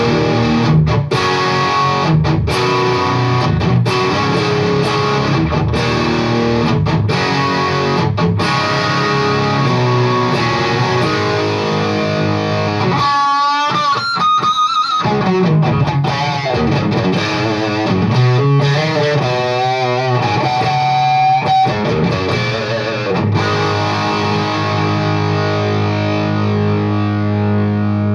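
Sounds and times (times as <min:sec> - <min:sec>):
overdriven saturated distorted chords and riffs: 0:00.0 - 0:28.1.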